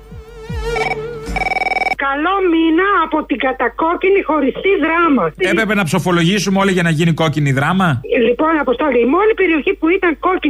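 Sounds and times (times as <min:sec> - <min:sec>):
telephone ringing with electronic trilling tone: 0:00.7 - 0:02.0
speech: 0:02.1 - 0:10.4.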